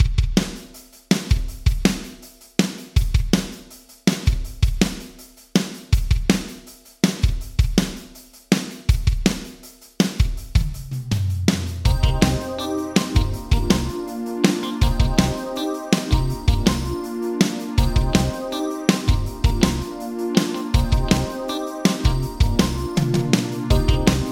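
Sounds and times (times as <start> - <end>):
Yamaha drums in a small room: 0.0 - 24.3.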